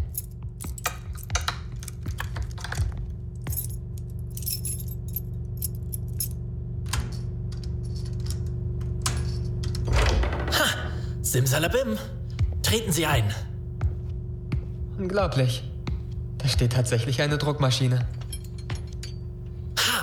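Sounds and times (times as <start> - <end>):
bunch of keys jingling: 0.0 - 9.9, 18.0 - 19.6
steady low hum: 0.0 - 20.0
speech: 11.3 - 13.5, 15.0 - 15.7, 16.5 - 18.2.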